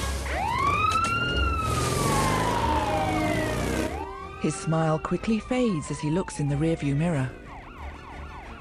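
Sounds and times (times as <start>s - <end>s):
police motorbike siren: 0.1s - 8.5s
speech: 4.4s - 7.4s.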